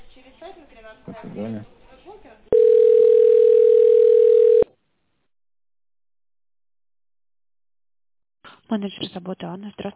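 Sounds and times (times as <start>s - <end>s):
speech: 0.2s - 3.0s, 8.7s - 9.9s
telephone line tone while a call is being transferred: 2.5s - 4.7s.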